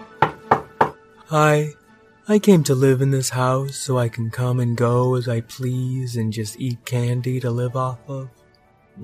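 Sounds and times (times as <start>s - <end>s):
cat knocking on a door: 0.2s - 1.0s
speech: 1.3s - 8.4s.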